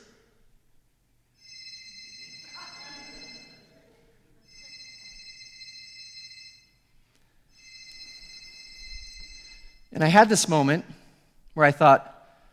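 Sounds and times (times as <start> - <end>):
cell phone ringtone: 1.4 - 3.7, 4.4 - 6.8, 7.5 - 10.0
speech: 10.0 - 11.0, 11.6 - 12.1.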